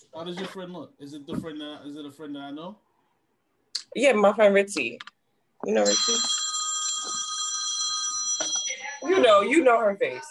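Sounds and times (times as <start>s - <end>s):
speech: 0.1s - 2.9s, 3.9s - 6.4s, 9.0s - 10.2s
phone ringtone like an old house phone ringing: 5.8s - 9.7s.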